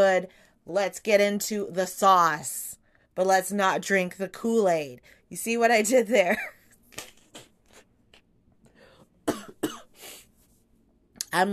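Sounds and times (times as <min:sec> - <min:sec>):
speech: 0:00.2 - 0:07.1, 0:11.3 - 0:11.5
sharp coughs: 0:09.2 - 0:10.0.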